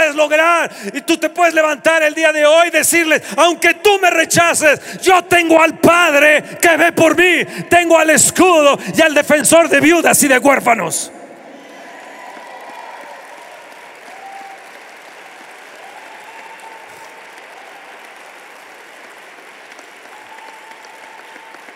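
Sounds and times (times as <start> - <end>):
speech: 0.2 - 11.2
large audience applauding: 11.5 - 21.7.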